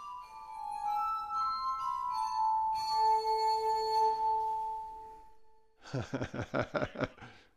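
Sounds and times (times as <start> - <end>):
glass harmonica playing slow sustained tones: 0.0 - 5.2
laughter: 5.9 - 7.3
speech: 5.9 - 7.4.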